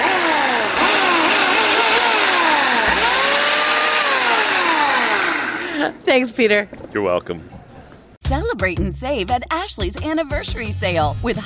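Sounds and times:
chainsaw engine revving: 0:00.0 - 0:05.8
speech: 0:05.8 - 0:07.6, 0:08.3 - 0:11.4.

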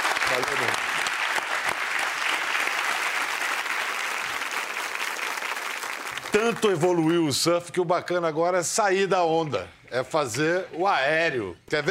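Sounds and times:
audience applause: 0:00.0 - 0:07.1
speech: 0:00.3 - 0:01.0, 0:06.3 - 0:11.8.

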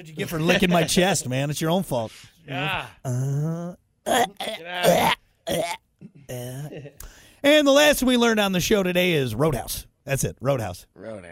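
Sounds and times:
speech: 0:00.0 - 0:11.3
person vocally imitating hacking up a hairball: 0:02.6 - 0:06.8.

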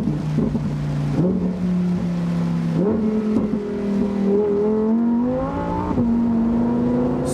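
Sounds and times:
Lamborghini Huracán 5.2-litre 640 hp V10 engine revving in stepped surges: 0:00.0 - 0:07.3.

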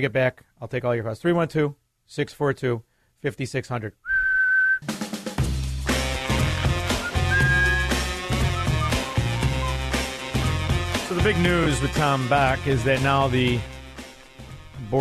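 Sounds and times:
speech: 0:00.0 - 0:04.1, 0:11.2 - 0:13.7
whistle blast: 0:04.1 - 0:04.8, 0:06.9 - 0:09.9
upbeat music: 0:05.4 - 0:14.9.

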